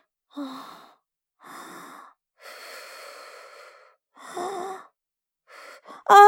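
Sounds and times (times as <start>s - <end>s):
slow deep breathing: 0.3s - 4.9s.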